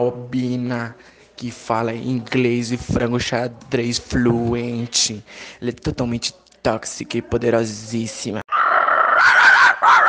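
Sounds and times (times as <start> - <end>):
speech: 0.0 - 8.4
dog yelping in high whining cries: 8.7 - 10.0.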